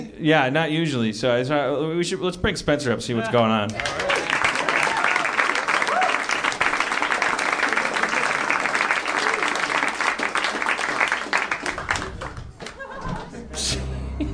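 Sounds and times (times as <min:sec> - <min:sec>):
speech: 0:00.2 - 0:04.1
crowd clapping: 0:03.7 - 0:13.3
scattered laughter: 0:12.7 - 0:14.3.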